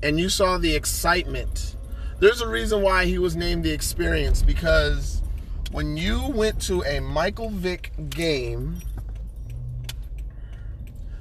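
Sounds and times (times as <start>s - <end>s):
speech: 0.0s - 9.0s
road rumble in a car cabin while driving: 0.0s - 11.1s
metallic keys jangling: 4.1s - 11.1s.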